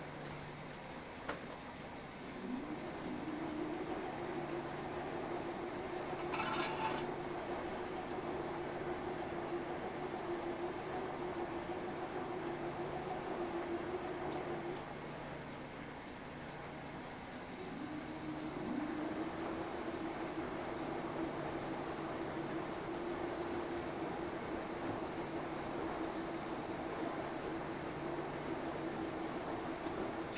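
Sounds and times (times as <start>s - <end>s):
laundry interior ambience: 0.0s - 30.3s.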